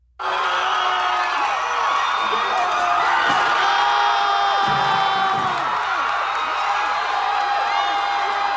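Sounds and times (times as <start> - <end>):
large outdoor crowd of students cheering and whooping on a campus: 0.2 - 8.5
students clapping: 0.2 - 8.5
students shouting: 0.2 - 8.5
students kicking and stomping on a 1913 Confederate statue: 2.2 - 6.8.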